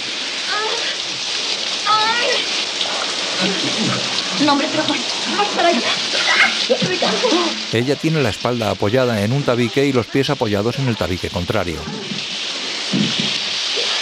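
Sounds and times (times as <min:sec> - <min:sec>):
shower water spraying on a person's face: 0:00.0 - 0:14.0
speech: 0:03.4 - 0:12.2.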